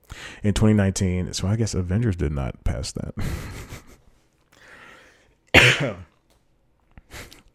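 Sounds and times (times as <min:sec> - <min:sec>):
speech: 0:00.4 - 0:03.6, 0:05.6 - 0:06.1
soft breathy exhale: 0:04.6 - 0:05.3
person coughing after laughing at a joke: 0:05.5 - 0:06.1.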